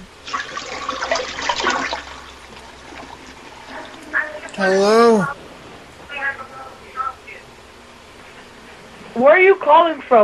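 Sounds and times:
toilet flushing on its own: 0.2 - 4.0
speech: 4.6 - 5.4, 9.2 - 10.2.

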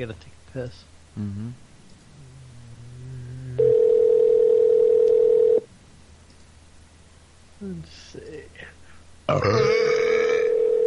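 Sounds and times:
speech: 0.0 - 1.6, 7.6 - 10.1
faint low hum: 0.0 - 10.8
telephone ringing with electronic tone: 3.6 - 5.6, 10.5 - 10.8.

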